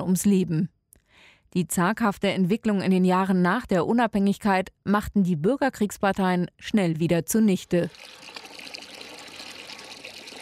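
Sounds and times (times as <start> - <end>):
speech: 0.0 - 0.8, 1.5 - 8.4
water pouring from a water pump on school grounds: 7.8 - 10.4.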